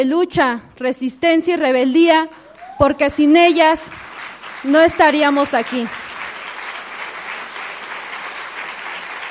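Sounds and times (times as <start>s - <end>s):
speech: 0.0s - 4.0s, 4.6s - 6.0s
large audience applauding at a gathering: 3.9s - 9.2s.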